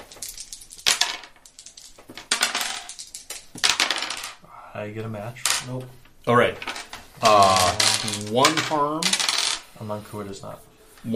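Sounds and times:
dice rolling on a hard table: 0:00.0 - 0:04.4, 0:06.4 - 0:09.8
speech: 0:04.8 - 0:11.1.

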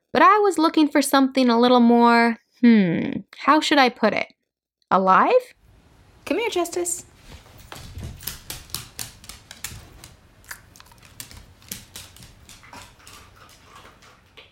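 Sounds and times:
speech: 0:00.2 - 0:05.6, 0:06.3 - 0:07.1
light brown female dog tapping on wooden floor in an apartment: 0:07.3 - 0:14.5.

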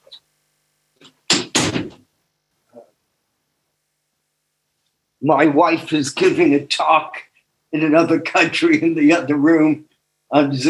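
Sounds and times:
door swinging and shutting with solid thumps: 0:01.0 - 0:02.0
speech: 0:05.2 - 0:10.6.

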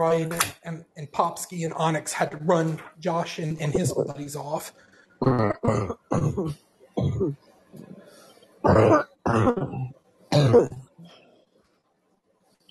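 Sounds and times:
speech: 0:00.0 - 0:07.5, 0:08.6 - 0:10.8
soft hacking and throat clearing: 0:05.2 - 0:07.4, 0:08.7 - 0:10.8
loud coughs: 0:05.4 - 0:07.2, 0:08.7 - 0:09.8.

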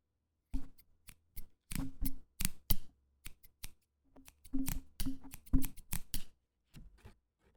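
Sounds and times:
scissors snipping: 0:00.6 - 0:06.3.

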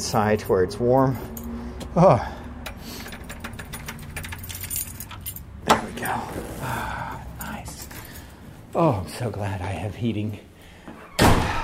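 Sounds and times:
speech: 0:00.0 - 0:01.4, 0:02.0 - 0:02.4, 0:08.8 - 0:10.5
keys jangling as a rectory door is unlocked: 0:02.6 - 0:06.1, 0:07.3 - 0:08.4.

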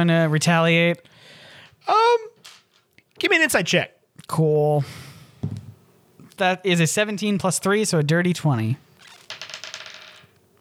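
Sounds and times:
speech: 0:00.0 - 0:01.1, 0:01.8 - 0:02.3, 0:03.2 - 0:05.6, 0:06.4 - 0:08.8
dice clattering across a hard tabletop: 0:09.0 - 0:10.4.

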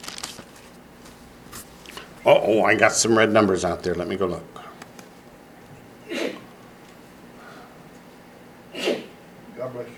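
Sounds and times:
faint hum: 0:00.0 - 0:09.9
speech: 0:02.2 - 0:04.7
person sneezing: 0:06.0 - 0:06.5, 0:08.7 - 0:09.2.

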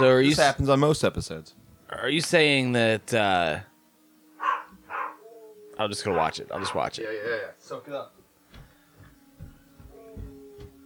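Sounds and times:
dog barks: 0:00.0 - 0:00.2, 0:04.4 - 0:05.4, 0:06.1 - 0:06.9
speech: 0:00.0 - 0:03.7, 0:05.8 - 0:08.2.

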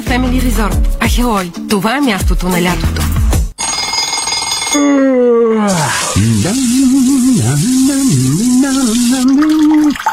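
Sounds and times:
speech: 0:00.1 - 0:03.1, 0:04.7 - 0:09.5
person wailing: 0:04.8 - 0:09.7
water running from a tap: 0:05.7 - 0:10.1.

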